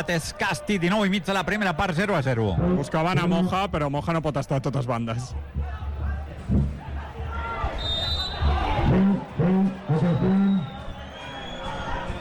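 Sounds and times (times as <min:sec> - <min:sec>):
speech: 0:00.0 - 0:05.9
large stadium crowd murmuring: 0:05.4 - 0:12.2.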